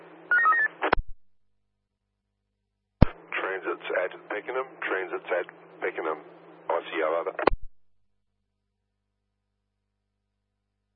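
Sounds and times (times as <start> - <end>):
telephone touch-tone dialing beeps: 0.3 - 0.7
speech: 3.6 - 7.6.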